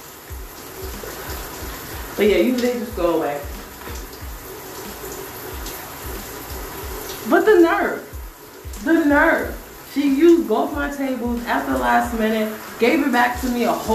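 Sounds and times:
shower water running: 0.0 - 13.9
speech: 2.2 - 3.5, 7.3 - 8.0, 8.8 - 13.9.

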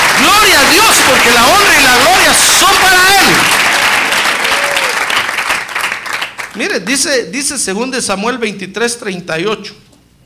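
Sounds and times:
church congregation applauding: 0.0 - 6.8
speech: 6.7 - 9.9.

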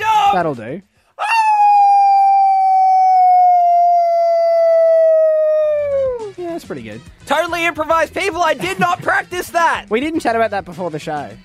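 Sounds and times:
speech: 0.3 - 0.9, 6.6 - 11.4
person imitating a werewolf howl: 1.2 - 6.4.

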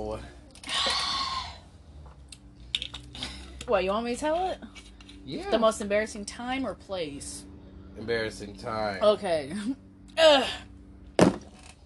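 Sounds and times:
speech: 0.1 - 0.4, 3.7 - 10.7
bottle slammed down hard on a surface: 11.2 - 11.5.

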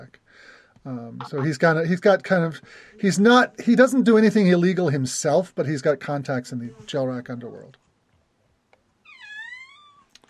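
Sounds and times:
speech: 0.0 - 7.8
kitten meowing: 9.1 - 10.1.

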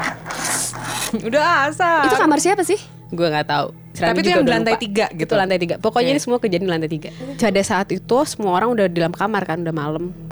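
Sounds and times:
short harsh scraping rasp: 0.0 - 1.3
speech: 1.1 - 10.3
person laughing: 4.2 - 4.8, 7.2 - 7.6.

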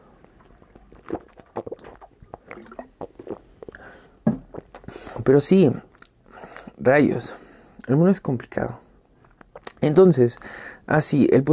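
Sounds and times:
person sipping water and swallowing: 0.0 - 5.0
loud gulp of water: 1.1 - 3.9
speech: 5.3 - 5.9, 6.8 - 8.8, 9.8 - 11.5.

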